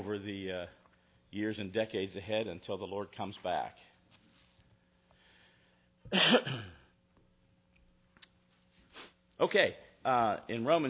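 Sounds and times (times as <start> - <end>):
speech: 0.1 - 3.9, 6.0 - 6.8, 9.4 - 10.8
person sneezing: 6.1 - 6.9.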